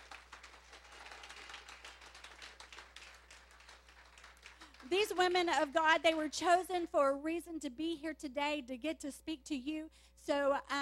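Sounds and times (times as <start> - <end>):
room full of people applauding: 0.0 - 5.4
speech: 4.8 - 10.8.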